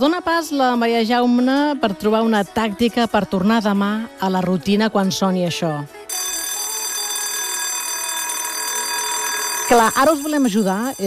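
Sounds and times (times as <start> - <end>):
speech: 0.0 - 6.0, 9.7 - 11.0
school bell ringing: 6.1 - 11.0.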